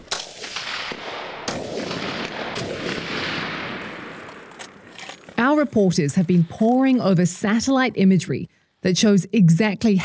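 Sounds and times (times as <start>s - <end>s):
gunfire from recruits training on a military firing range in Ukraine: 0.0s - 4.9s
speech: 5.5s - 10.0s.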